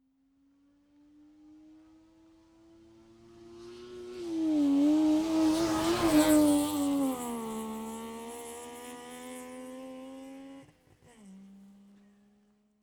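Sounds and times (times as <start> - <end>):
Saab 92 car passing right to left outside: 3.1 - 11.9.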